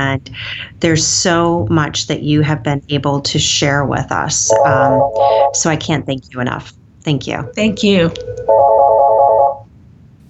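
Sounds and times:
speech: 0:00.0 - 0:09.0
faint low hum: 0:00.0 - 0:10.2
phone ringtone ringing in a warbling electronic tone: 0:04.5 - 0:05.6, 0:07.4 - 0:09.6.

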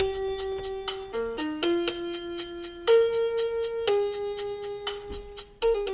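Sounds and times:
light percussion tapping: 0:00.0 - 0:04.2
slow blues tune: 0:00.0 - 0:05.9.

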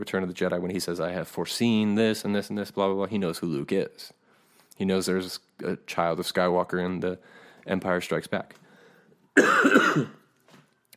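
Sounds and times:
speech: 0:00.0 - 0:04.2, 0:04.8 - 0:08.6, 0:09.4 - 0:10.2
faint breath: 0:04.2 - 0:04.8, 0:07.2 - 0:07.7, 0:08.6 - 0:09.2
raspy cough from a person getting over being sick: 0:09.4 - 0:10.2.

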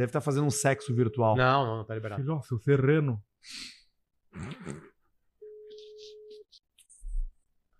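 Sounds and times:
speech: 0:00.0 - 0:03.8, 0:04.4 - 0:04.9
telephone busy tone electronic beep: 0:05.4 - 0:06.4.

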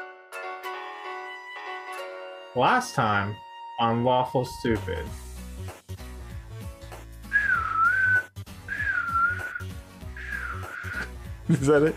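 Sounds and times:
speech: 0:02.6 - 0:05.3, 0:11.5 - 0:11.9
eerie whistling: 0:07.3 - 0:11.1.

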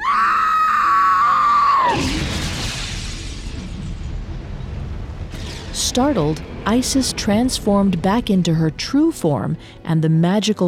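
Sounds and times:
woman screaming in horror: 0:00.0 - 0:02.0
speech: 0:06.0 - 0:10.6.

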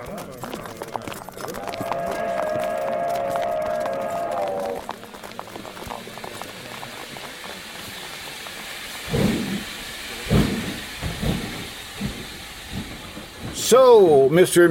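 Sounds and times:
heavy slow chuffs of a departing steam train bound for London: 0:00.0 - 0:14.6
steady hiss of steam from a steam train: 0:01.6 - 0:14.6
long shrill steam train whistle: 0:01.7 - 0:05.0
speech: 0:13.7 - 0:14.6.

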